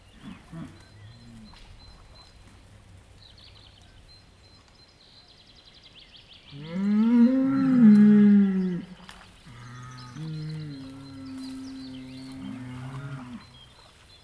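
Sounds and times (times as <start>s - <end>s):
bulls in water among reeds mooing and calling: 6.6s - 8.9s, 9.5s - 13.5s.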